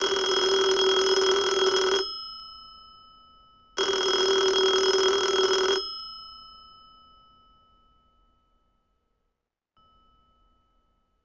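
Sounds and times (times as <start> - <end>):
telephone ringing: 0.0 - 2.1, 3.8 - 5.9.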